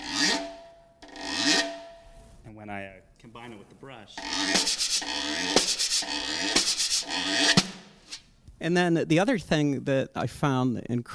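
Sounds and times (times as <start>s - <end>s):
steady ringing tone: 0.0s - 2.4s, 4.2s - 7.9s
drumstick scraped along the rim of a snare drum: 0.0s - 2.5s, 3.3s - 8.6s
speech: 2.6s - 7.9s, 8.6s - 11.1s.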